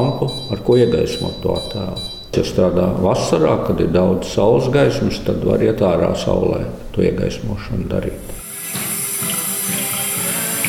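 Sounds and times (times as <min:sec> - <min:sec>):
speech: 0:00.0 - 0:08.4
running tap water rinsing photographic paper: 0:08.2 - 0:10.6.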